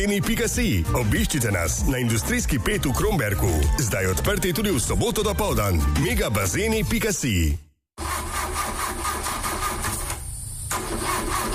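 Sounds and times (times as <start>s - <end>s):
speech: 0.0s - 7.6s
car engine cranking without catching, starter grinding: 8.0s - 11.5s.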